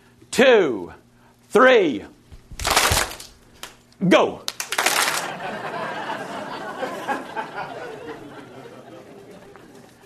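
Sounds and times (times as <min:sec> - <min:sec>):
speech: 0:00.4 - 0:02.2, 0:04.0 - 0:04.5
audience slapping hands together during a group exercise: 0:02.6 - 0:03.8, 0:04.4 - 0:10.0
laughter: 0:04.9 - 0:10.0.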